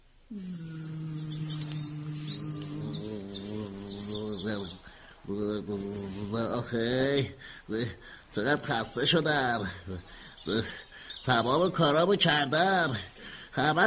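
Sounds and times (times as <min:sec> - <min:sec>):
voice imitating a bee buzz: 0:00.3 - 0:06.6
speech: 0:05.3 - 0:13.8.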